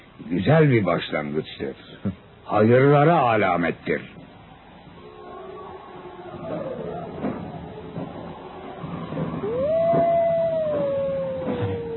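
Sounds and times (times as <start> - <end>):
wind outdoors: 0.0 - 11.9
speech: 0.2 - 4.2
wolf howling: 5.0 - 11.9.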